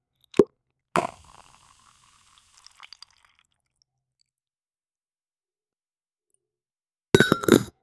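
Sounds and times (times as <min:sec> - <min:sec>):
bottle: 0:01.0 - 0:03.5, 0:07.2 - 0:07.7.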